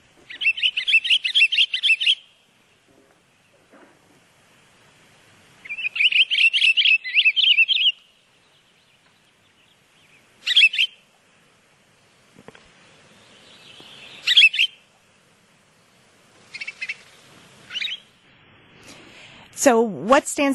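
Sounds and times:
pine grosbeak singing: 0.2 - 3.7, 5.6 - 11.1, 13.0 - 14.9, 15.7 - 18.2
speech: 19.6 - 20.5.

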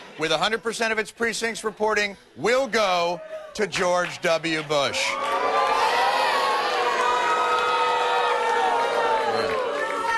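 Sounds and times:
speech: 0.2 - 5.3
large crowd cheering and shouting: 4.9 - 10.1.

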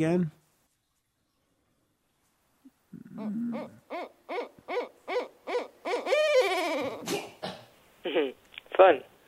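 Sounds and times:
speech: 0.0 - 0.4, 3.2 - 4.1, 8.2 - 9.1
barred owl hooting: 3.0 - 7.2.

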